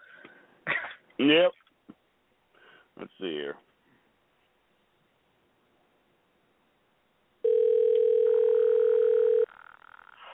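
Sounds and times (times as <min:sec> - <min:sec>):
speech: 0:01.2 - 0:01.6, 0:03.0 - 0:03.7
loud steady electronic phone ringing tone: 0:07.4 - 0:10.1.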